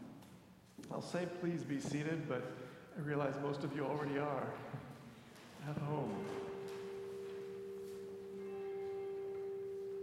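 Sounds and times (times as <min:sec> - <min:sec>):
speech: 0:00.9 - 0:04.9, 0:05.6 - 0:06.4
bell ringing: 0:06.1 - 0:10.0.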